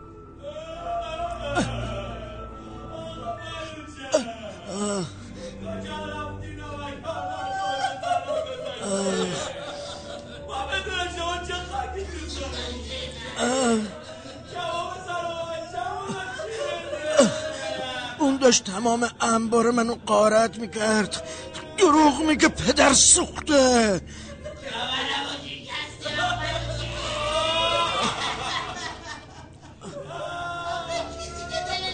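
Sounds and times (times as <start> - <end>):
group of mourners crying and wailing: 0.0 - 18.3, 26.0 - 31.9
laughter: 7.0 - 19.0, 20.3 - 31.9
speech: 18.5 - 24.2.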